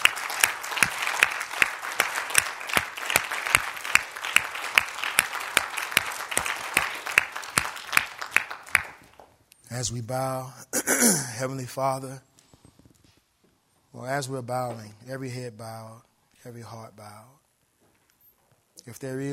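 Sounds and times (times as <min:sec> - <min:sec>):
audience clapping hands in praise: 0:00.0 - 0:09.3
speech: 0:09.8 - 0:12.3, 0:14.0 - 0:17.4, 0:18.8 - 0:19.3.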